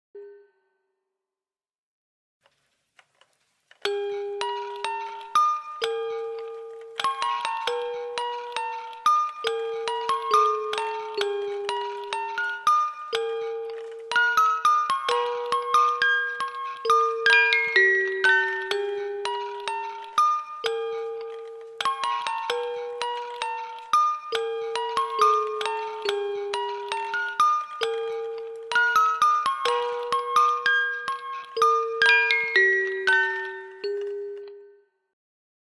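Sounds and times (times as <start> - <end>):
creepy music box: 3.8 - 35.1.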